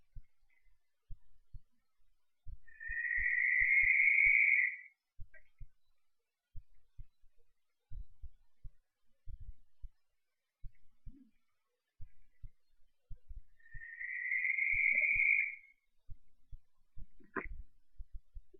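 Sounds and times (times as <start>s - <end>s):
Cape Verde barn owl raspy screams: 2.9s - 4.8s, 13.8s - 15.6s.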